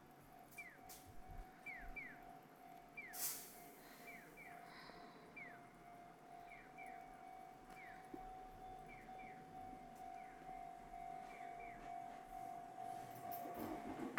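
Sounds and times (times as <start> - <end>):
railroad crossing bell clanging: 0.0 - 4.5, 5.6 - 14.1
outdoor ambience: 0.0 - 14.1
low rumble of a passing train: 0.1 - 14.1.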